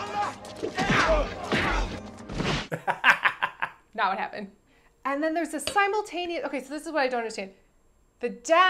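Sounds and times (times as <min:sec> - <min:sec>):
movie punching sound effects: 0:00.3 - 0:02.7
speech: 0:00.6 - 0:01.5, 0:04.0 - 0:07.6, 0:08.2 - 0:08.6
laughter: 0:02.7 - 0:03.8.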